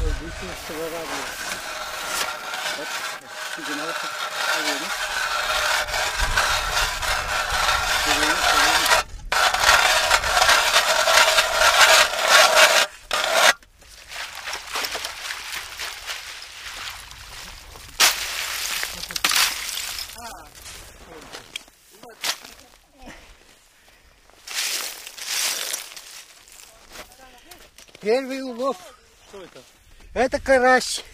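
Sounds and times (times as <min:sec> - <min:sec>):
large hand auger boring a hole through ice for fishing: 0:00.0 - 0:20.3
speech: 0:00.4 - 0:01.7, 0:02.8 - 0:06.2, 0:30.2 - 0:31.1.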